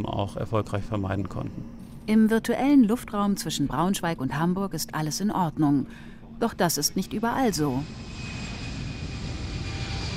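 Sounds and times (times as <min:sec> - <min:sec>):
speech: 0:00.0 - 0:08.3
airliner engine roar with thin constant whine: 0:07.0 - 0:10.1
Boeing 737 airliner taking off in snowy weather: 0:07.6 - 0:10.1.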